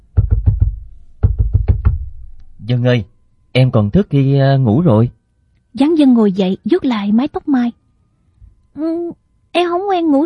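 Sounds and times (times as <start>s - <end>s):
knocking on a door: 0.1s - 2.2s
speech: 2.7s - 5.2s, 5.8s - 7.8s, 8.8s - 10.2s.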